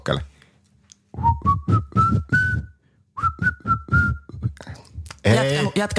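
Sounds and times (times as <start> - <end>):
speech: 0.0 - 0.3, 5.4 - 5.9
person whistling a song melody: 1.2 - 4.6.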